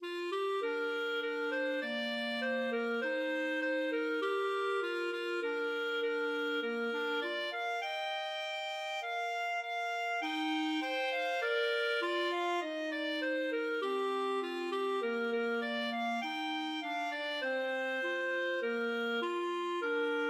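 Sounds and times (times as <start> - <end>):
clarinet duet playing a folk tune: 0.0 - 20.2.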